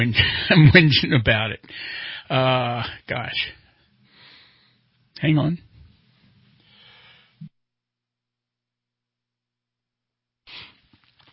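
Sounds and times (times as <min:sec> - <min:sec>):
speech: 0:00.0 - 0:03.6, 0:05.2 - 0:05.7
person sneezing: 0:10.5 - 0:10.9.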